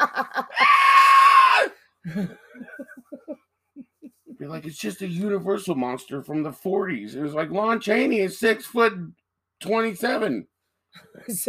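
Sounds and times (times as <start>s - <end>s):
person laughing: 0.0s - 0.7s, 2.0s - 4.5s
person doing a high-pitched mock scream: 0.5s - 1.8s
person chuckling: 2.0s - 4.5s
speech: 4.7s - 11.4s.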